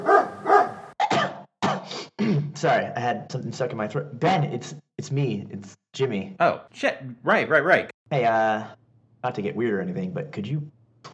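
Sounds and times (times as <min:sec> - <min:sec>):
rabid dog barking loudly: 0:00.0 - 0:01.0
speech: 0:02.2 - 0:11.1.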